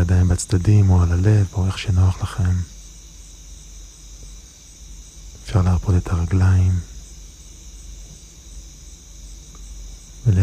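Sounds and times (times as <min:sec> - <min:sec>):
crickets chirping: 0:00.0 - 0:10.4
faint hiss: 0:00.0 - 0:10.4
speech: 0:00.2 - 0:02.8, 0:05.5 - 0:06.9, 0:10.2 - 0:10.4.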